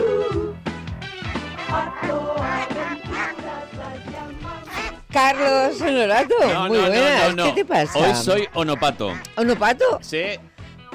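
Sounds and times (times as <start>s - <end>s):
duck quacking: 1.2s - 3.5s, 4.6s - 9.9s
speech: 5.2s - 10.5s.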